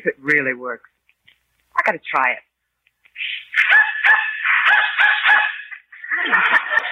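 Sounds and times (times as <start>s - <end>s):
speech: 0.3s - 2.5s
dog whistle being blown: 3.2s - 5.6s
dog barking and yelping excitedly: 3.5s - 5.9s
laughter: 5.9s - 6.9s.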